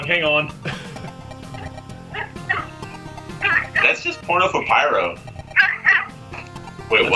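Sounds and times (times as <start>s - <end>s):
speech: 0.1s - 0.7s, 3.8s - 5.3s, 6.9s - 7.1s
dog barking and yipping: 2.1s - 2.8s, 3.4s - 4.0s, 5.6s - 6.2s.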